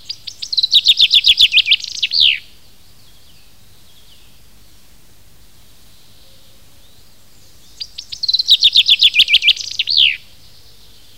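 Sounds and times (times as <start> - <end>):
Common chaffinch song: 0.0 - 11.1.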